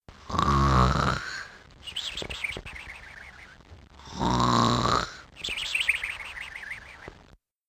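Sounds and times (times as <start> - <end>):
snoring: 0.2 - 1.5, 4.0 - 5.3.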